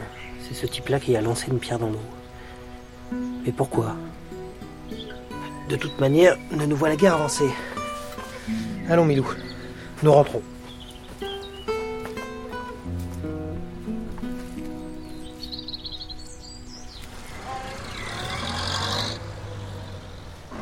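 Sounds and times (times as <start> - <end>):
speech: 0.5 - 2.2, 3.1 - 4.2, 5.7 - 7.8, 8.5 - 10.5
doctor's car engine rumbling and pulling away: 16.7 - 20.6.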